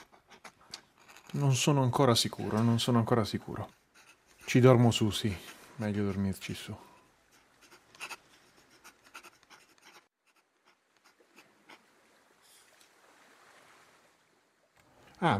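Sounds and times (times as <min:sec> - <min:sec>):
scratchy writing: 0:00.0 - 0:01.5, 0:03.6 - 0:06.2, 0:07.3 - 0:11.8
speech: 0:01.3 - 0:03.8, 0:04.5 - 0:06.9.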